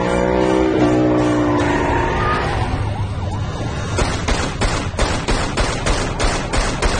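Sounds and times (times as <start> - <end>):
screeching tones: 0.0 - 3.7
siren wailing: 0.0 - 3.9
rapid string of loud gunshots: 4.0 - 6.9.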